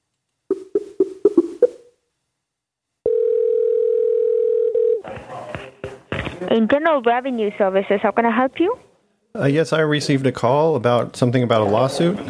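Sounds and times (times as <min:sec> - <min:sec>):
telephone dial tone after a call is disconnected: 0:03.1 - 0:05.0
speech: 0:06.4 - 0:12.2.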